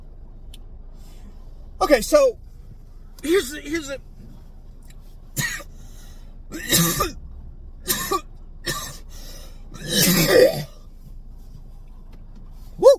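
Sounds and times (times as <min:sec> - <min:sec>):
speech: 0:01.8 - 0:02.4, 0:03.2 - 0:04.1
heavy harsh coughing: 0:05.4 - 0:05.7, 0:06.5 - 0:07.2, 0:07.9 - 0:09.1, 0:09.8 - 0:10.8.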